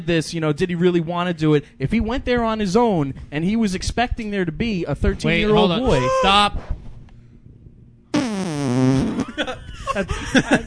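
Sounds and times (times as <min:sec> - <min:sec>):
speech: 0:00.0 - 0:06.8, 0:09.4 - 0:10.6
video game style fart sound effect: 0:08.1 - 0:09.6
laughter: 0:09.2 - 0:10.6.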